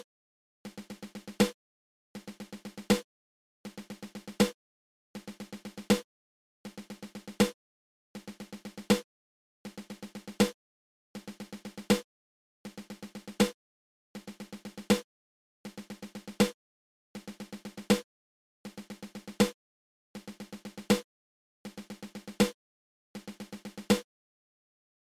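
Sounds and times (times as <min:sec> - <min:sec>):
seven stroke roll triple on drum: 0:00.7 - 0:01.5, 0:02.2 - 0:03.1, 0:03.7 - 0:04.5, 0:05.2 - 0:06.1, 0:06.7 - 0:07.5, 0:08.2 - 0:09.1, 0:09.7 - 0:10.5, 0:11.2 - 0:12.1, 0:12.7 - 0:13.5, 0:14.2 - 0:15.1, 0:15.7 - 0:16.5, 0:17.2 - 0:18.1, 0:18.7 - 0:19.5, 0:20.2 - 0:21.1, 0:21.7 - 0:22.5, 0:23.2 - 0:24.1.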